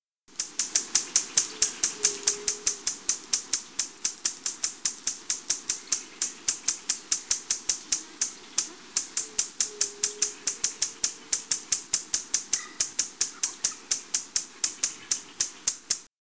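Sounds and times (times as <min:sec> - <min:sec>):
buff-bellied hummingbird: 0:00.3 - 0:16.1.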